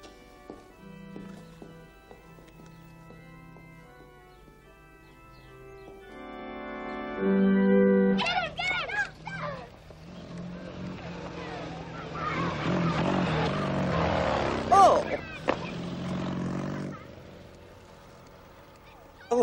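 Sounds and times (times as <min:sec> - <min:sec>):
motorcycle engine roaring past: 0:06.9 - 0:19.3
voices: 0:08.1 - 0:19.4.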